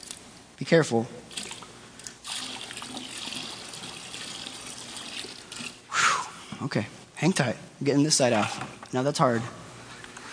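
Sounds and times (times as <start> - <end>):
speech: 0.6 - 1.2, 6.6 - 9.6
water pouring and splashing: 2.2 - 5.8.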